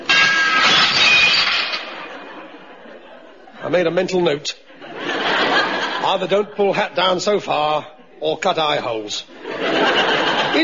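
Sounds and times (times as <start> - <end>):
nightclub glass doorway shattering as a man walks through it: 0.0 - 2.3
breaking and tinkling glass shards: 0.1 - 2.1
laughter: 1.9 - 10.6
speech: 3.7 - 4.7, 6.1 - 10.6.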